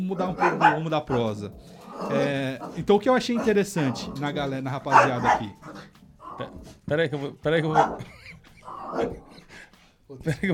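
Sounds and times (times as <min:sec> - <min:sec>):
dog barking excitedly: 0:00.0 - 0:06.7, 0:07.6 - 0:09.3
speech: 0:00.1 - 0:10.5
laughter: 0:07.6 - 0:10.5.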